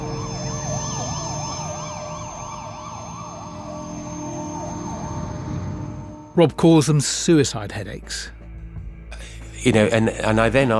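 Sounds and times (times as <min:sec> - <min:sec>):
low rumble of road traffic: 0:00.0 - 0:06.3
ambulance siren wailing: 0:00.0 - 0:06.4
speech: 0:06.4 - 0:08.4, 0:09.6 - 0:10.7.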